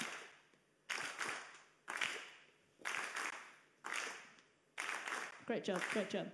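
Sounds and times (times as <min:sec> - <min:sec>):
group clapping hands in a steady beat: 0:00.0 - 0:06.3
speech: 0:05.5 - 0:06.3.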